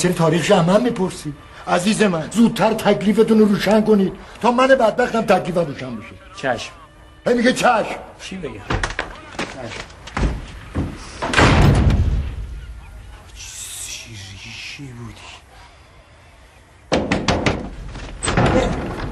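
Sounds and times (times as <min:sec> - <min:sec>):
speech: 0:00.0 - 0:08.9, 0:09.6 - 0:09.9, 0:14.8 - 0:15.3
door slammed shut: 0:10.1 - 0:12.7, 0:16.9 - 0:19.0.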